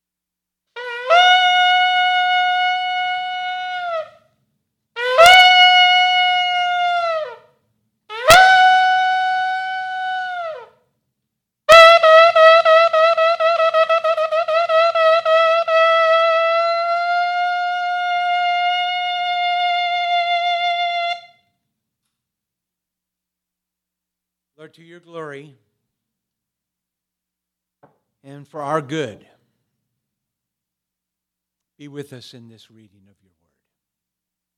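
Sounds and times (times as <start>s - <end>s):
trumpet blasts: 0.8s - 4.2s, 5.0s - 7.4s, 8.1s - 10.7s, 11.7s - 21.3s
speech: 28.5s - 29.3s, 31.8s - 33.1s.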